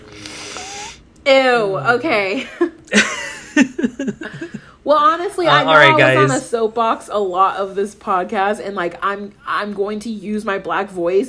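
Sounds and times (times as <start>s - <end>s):
drawn-out nasal sniffle: 0.0s - 1.0s
speech: 1.3s - 3.2s, 3.9s - 11.2s
laughter: 2.9s - 4.6s.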